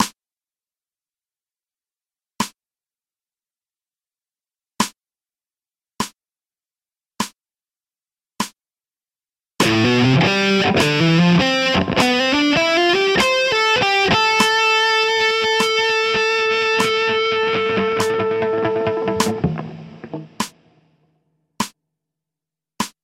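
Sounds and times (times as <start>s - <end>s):
slow electric guitar lick for finger dexterity training: 9.6s - 20.6s.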